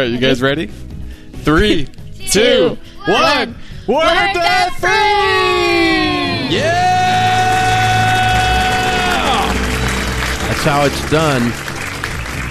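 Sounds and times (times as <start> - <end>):
speech: 0.0 - 7.0, 10.6 - 11.7
man shouting excitedly over crowd: 2.2 - 9.6
family screaming together in celebration after paying off debt: 4.9 - 9.6
crowd cheering and clapping: 5.2 - 12.5
laughter: 7.0 - 12.3.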